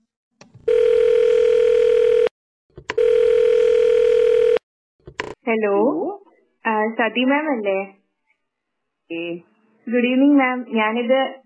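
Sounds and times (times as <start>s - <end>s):
phone ringback tone: 0.7s - 2.3s, 3.0s - 4.6s
speech: 5.5s - 6.2s, 6.8s - 8.0s, 9.1s - 11.4s.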